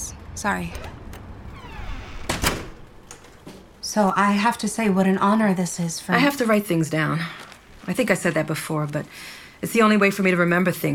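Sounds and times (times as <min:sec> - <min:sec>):
speech: 0:00.4 - 0:00.9, 0:03.9 - 0:10.9
faint creaking: 0:00.6 - 0:04.0
door swinging shut with a short thud and brief rattle: 0:00.7 - 0:02.9.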